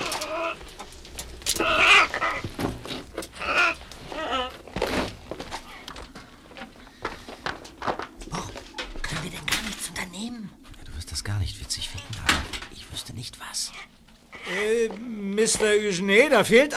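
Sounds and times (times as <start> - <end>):
parrots squawking and screeching: 0.0 - 0.8, 1.4 - 5.0, 13.7 - 14.8
speech: 15.5 - 16.7.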